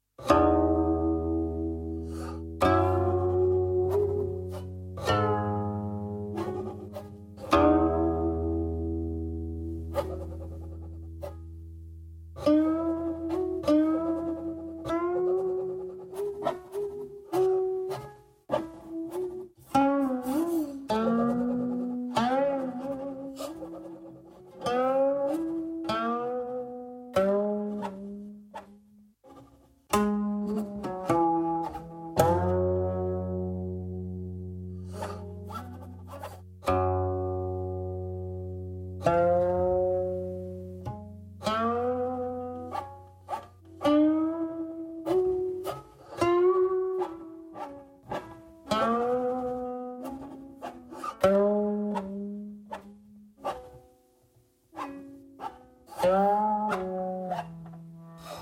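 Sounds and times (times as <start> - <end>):
guqin playing a demonstration piece: 0.2 - 58.3.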